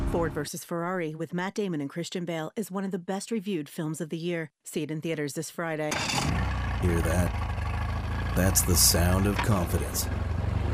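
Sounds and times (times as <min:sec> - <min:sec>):
speech: 0:00.1 - 0:07.5, 0:08.4 - 0:10.2
boat engine idling: 0:05.9 - 0:10.7.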